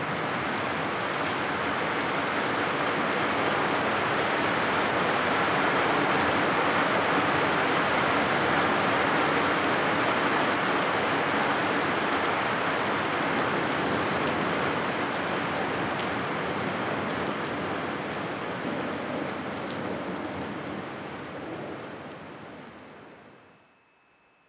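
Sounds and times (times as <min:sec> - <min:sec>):
heavy rain from a spring thunderstorm: 0:00.0 - 0:23.5
low thunder rumbling: 0:16.9 - 0:23.4.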